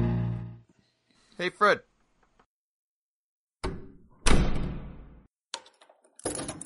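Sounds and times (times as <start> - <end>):
speech: 1.5 - 1.9
door shutting with heavy thud: 3.6 - 5.0.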